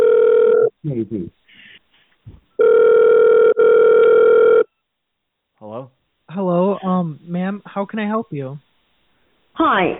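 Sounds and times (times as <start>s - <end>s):
telephone ringing tone while a call is transferred: 0.0s - 0.7s, 2.6s - 4.7s
speech: 0.8s - 1.6s, 7.8s - 8.7s, 9.6s - 9.9s.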